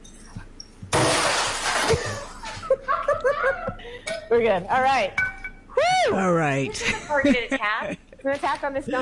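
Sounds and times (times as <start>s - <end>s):
object smashed with a baseball bat: 0.9s - 2.2s
debris rattling: 0.9s - 2.3s
laughter: 2.0s - 4.0s
speech: 4.3s - 5.2s, 6.0s - 8.9s.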